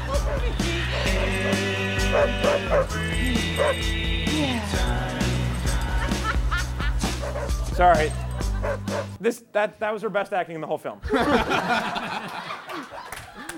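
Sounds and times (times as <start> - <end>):
film music: 0.0 - 12.2
dogs barking and yipping in a film scene: 0.1 - 3.9, 6.8 - 9.2
speech: 2.7 - 5.2, 7.8 - 12.4
laughter: 5.6 - 9.2, 11.0 - 13.5.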